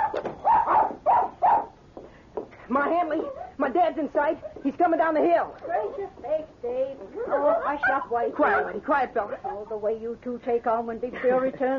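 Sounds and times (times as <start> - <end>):
small dog barking while following its owner into a store: 0.0 - 1.8, 7.2 - 8.8
speech: 2.7 - 11.7.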